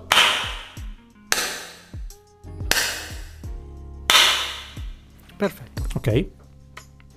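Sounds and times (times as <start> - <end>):
sharp hand claps reverberating in a room: 0.0 - 2.1, 2.7 - 3.5, 4.1 - 5.0
speech: 5.4 - 6.4.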